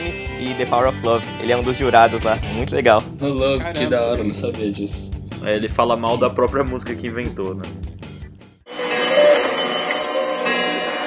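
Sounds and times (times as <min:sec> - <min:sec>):
speech: 0:00.5 - 0:07.9
many clocks chiming and ringing at eight o'clock: 0:08.7 - 0:11.0.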